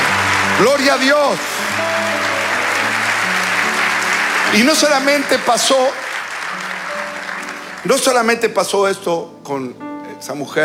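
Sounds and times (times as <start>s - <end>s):
applause from many hands during a sermon: 0.0s - 8.4s
speech: 0.6s - 1.9s, 4.5s - 6.6s, 7.8s - 10.6s.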